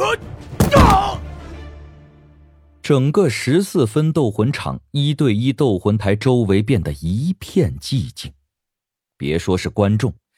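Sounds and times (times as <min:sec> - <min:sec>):
speech: 0:00.1 - 0:01.0, 0:02.9 - 0:08.4, 0:09.2 - 0:10.2
body falling off a fighting stage with heavy thump: 0:00.6 - 0:01.2.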